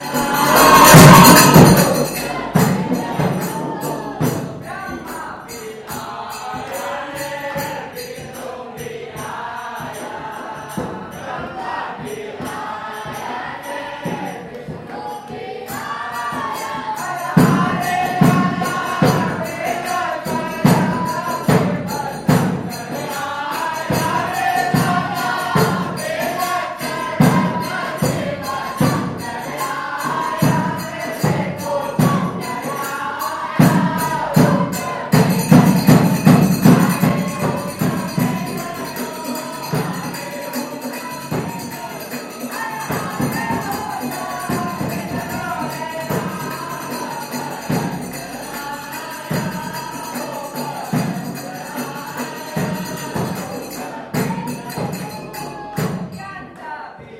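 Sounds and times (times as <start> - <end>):
religious service in a temple in Udaipur India: 0.0 - 57.1.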